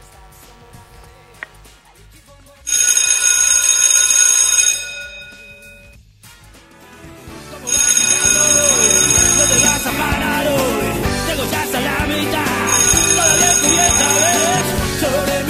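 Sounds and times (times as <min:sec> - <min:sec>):
bell rung by an operator: 0:02.7 - 0:06.0, 0:07.7 - 0:15.3.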